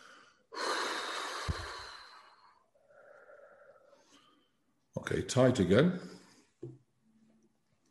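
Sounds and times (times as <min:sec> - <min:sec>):
forceful breath out from the chest during a relaxation exercise: 0:00.0 - 0:04.4
speech: 0:05.0 - 0:06.8.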